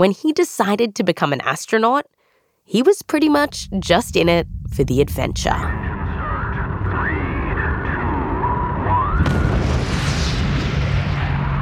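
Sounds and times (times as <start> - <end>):
speech: 0.0 - 5.9
solid rocket motors igniting at a rocket launch with 7 million pounds of thrust: 3.3 - 11.6.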